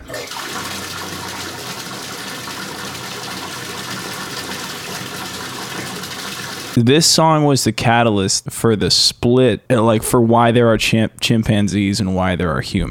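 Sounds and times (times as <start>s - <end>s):
steady rushing water: 0.0s - 6.8s
speech: 6.8s - 12.8s.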